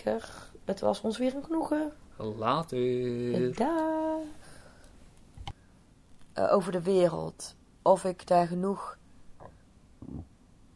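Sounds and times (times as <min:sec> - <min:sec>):
speech: 0:00.0 - 0:04.4, 0:06.4 - 0:09.0
little throat sound: 0:09.4 - 0:10.3
small burp: 0:09.4 - 0:10.3.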